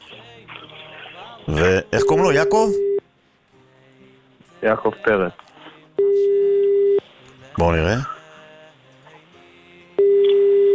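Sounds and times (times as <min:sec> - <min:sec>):
quiet telephone line hiss: 0:00.0 - 0:03.1, 0:04.6 - 0:09.4, 0:10.0 - 0:10.7
loud steady low-pitched phone tone: 0:00.5 - 0:03.0, 0:06.0 - 0:07.0, 0:07.6 - 0:08.2, 0:10.0 - 0:10.7
speech: 0:01.5 - 0:02.9, 0:04.6 - 0:05.4, 0:07.6 - 0:08.1.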